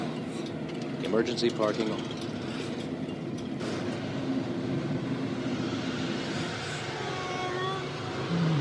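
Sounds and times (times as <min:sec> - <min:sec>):
steady road noise: 0:00.0 - 0:08.5
speech: 0:01.1 - 0:02.3
deeper louder engine tone: 0:04.1 - 0:08.5
old car engine revving and accelerating onto a freeway: 0:08.0 - 0:08.5.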